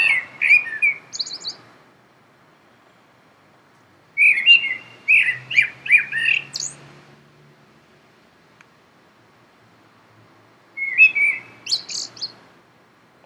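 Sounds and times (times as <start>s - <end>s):
Common blackbird singing mellow fluted warbles with high squeaky twitters: 0.0s - 1.7s, 4.2s - 6.8s, 10.8s - 12.4s.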